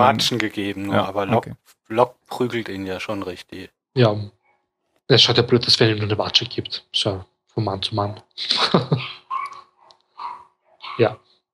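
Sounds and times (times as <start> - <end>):
speech: 0.0 - 4.4, 5.1 - 9.2, 11.0 - 11.2
laughter: 8.4 - 9.3
dog barking: 9.3 - 11.2.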